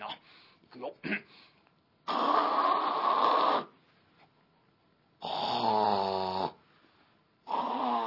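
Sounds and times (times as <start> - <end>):
voice imitating loud rasping snoring: 2.0 - 3.7, 5.2 - 6.6, 7.4 - 8.0.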